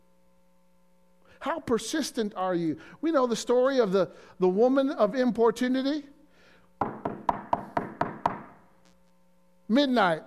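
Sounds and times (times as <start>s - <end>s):
speech: 1.4s - 6.2s, 9.7s - 10.2s
firm knocking on a wooden door: 6.8s - 8.6s.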